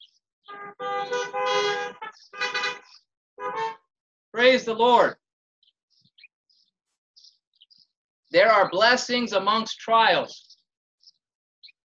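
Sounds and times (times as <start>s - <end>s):
car horns honking: 0.4s - 3.9s
speech: 4.4s - 5.2s, 8.3s - 10.5s.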